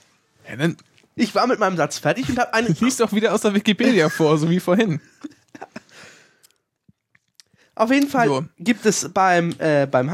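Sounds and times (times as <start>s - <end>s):
speech: 0.5s - 5.8s, 7.8s - 10.1s
laughter: 2.2s - 6.0s
person chewing food: 6.4s - 7.6s.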